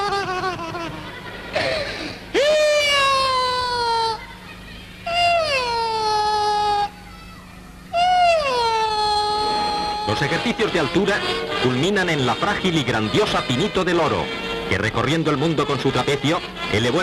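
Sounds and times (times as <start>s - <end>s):
child crying in wailing bursts: 0.0s - 10.6s
speech: 10.2s - 17.0s.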